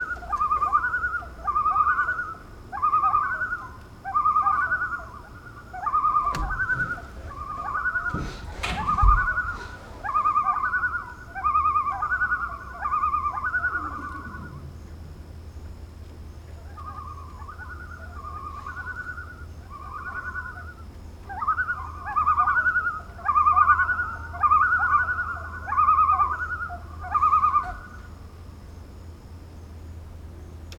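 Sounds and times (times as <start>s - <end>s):
loons calling near shore: 0.0s - 28.9s.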